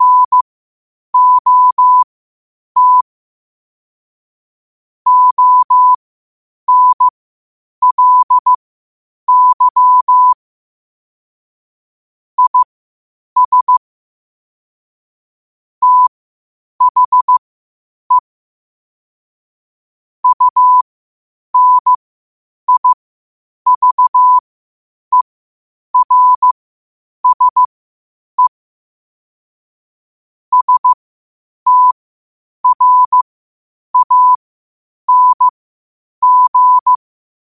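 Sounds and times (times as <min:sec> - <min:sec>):
morse code beeps at 5 wpm: 0:00.0 - 0:00.4, 0:01.2 - 0:02.1, 0:02.8 - 0:03.1, 0:05.1 - 0:06.0, 0:06.7 - 0:07.1, 0:07.8 - 0:08.6, 0:09.3 - 0:10.4, 0:12.4 - 0:12.7, 0:13.4 - 0:13.8, 0:15.8 - 0:16.1, 0:16.8 - 0:17.4, 0:20.2 - 0:20.8, 0:21.6 - 0:22.0, 0:22.7 - 0:23.0, 0:23.7 - 0:24.4, 0:26.0 - 0:26.6, 0:27.2 - 0:27.7, 0:30.5 - 0:31.0, 0:31.7 - 0:32.0, 0:32.6 - 0:33.2, 0:34.0 - 0:34.4, 0:35.1 - 0:35.5, 0:36.2 - 0:37.0.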